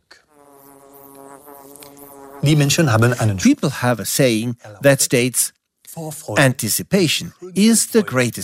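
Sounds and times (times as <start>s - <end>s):
bees buzzing at their tree hollow: 0.3s - 3.1s
speech: 2.4s - 8.4s.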